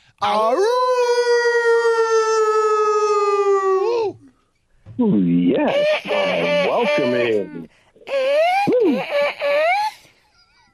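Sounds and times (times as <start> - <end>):
speech: 0.2 - 1.0, 5.0 - 7.6
radio caller from Virginia imitating a wolf howl: 0.2 - 4.2, 5.8 - 9.9.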